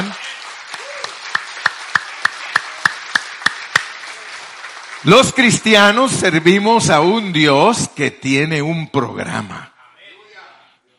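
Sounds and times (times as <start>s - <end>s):
group clapping hands in unison in praise: 0.0s - 6.6s
speech: 5.0s - 9.7s.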